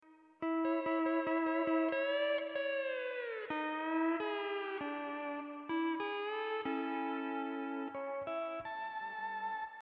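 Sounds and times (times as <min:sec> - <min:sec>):
Hawaiian technique steel guitar in E9th tuning: 0:00.1 - 0:09.8.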